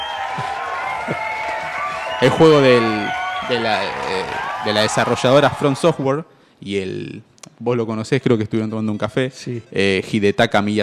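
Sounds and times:
large audience applauding and cheering at award ceremony: 0.0s - 6.1s
speech: 2.2s - 10.8s.

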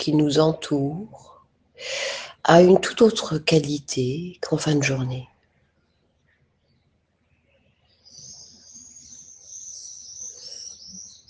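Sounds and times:
speech: 0.0s - 5.3s
dense chorus of high-pitched birdsong in the morning: 7.8s - 11.2s.

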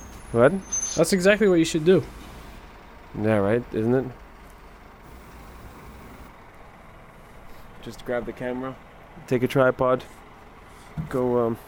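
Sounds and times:
large gasoline tanker truck passing with heavy engine roar: 0.0s - 9.2s
broadband road noise: 0.0s - 11.6s
speech: 0.3s - 2.2s, 3.1s - 4.2s, 7.8s - 10.2s, 11.0s - 11.6s.

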